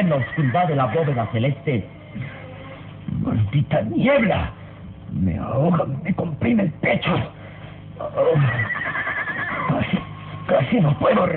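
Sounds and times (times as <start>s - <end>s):
speech: 0.0s - 2.4s, 3.2s - 7.4s, 8.0s - 9.0s, 9.7s - 11.3s
horses whinnying nervously: 0.0s - 2.9s, 8.2s - 10.1s.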